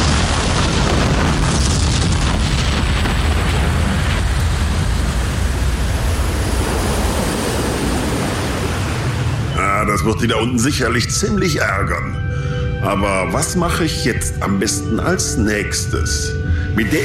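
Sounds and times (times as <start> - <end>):
crackling debris: 0.0 - 6.4
massive sustained explosion of a spaceship: 0.0 - 10.0
speech: 10.1 - 12.2, 12.8 - 17.0.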